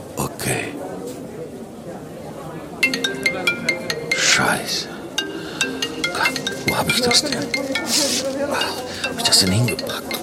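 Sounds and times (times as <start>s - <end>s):
mobile phone ringtone with bright electronic tones: 2.8s - 10.2s
speech: 4.4s - 4.9s, 6.8s - 10.2s.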